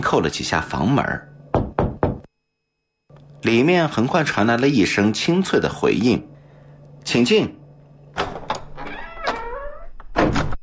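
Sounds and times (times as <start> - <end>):
speech: 0.1 - 1.3, 3.4 - 6.3, 7.0 - 7.6
door slowly pushed open creaking: 8.1 - 10.6.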